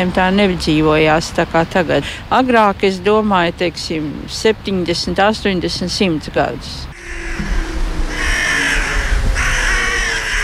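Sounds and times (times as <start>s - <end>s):
speech: 0.0s - 7.6s
crow cawing harshly: 6.9s - 10.4s.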